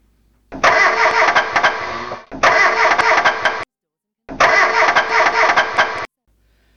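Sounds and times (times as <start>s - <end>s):
car engine cranking but failing to start: 0.5s - 3.7s, 4.3s - 6.1s.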